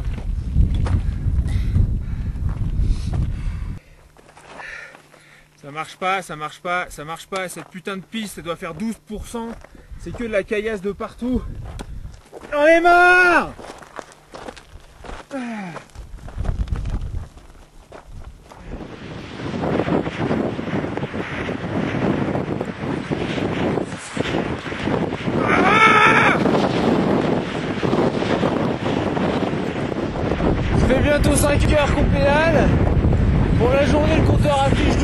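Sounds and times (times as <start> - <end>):
strong headwind buffeting the microphone: 0.0 - 3.9, 8.4 - 35.0
faint footsteps: 2.4 - 5.6, 7.4 - 10.5, 11.4 - 12.6, 13.5 - 18.8
speech: 5.7 - 11.8, 12.5 - 13.8, 15.3 - 15.9, 33.6 - 35.0.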